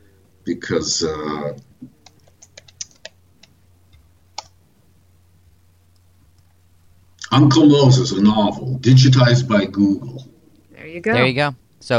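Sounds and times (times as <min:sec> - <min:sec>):
low steady hum: 0:00.0 - 0:11.9
speech: 0:00.5 - 0:02.0, 0:07.4 - 0:10.3, 0:11.0 - 0:11.9
typing on a computer keyboard: 0:02.0 - 0:03.5, 0:04.3 - 0:04.5.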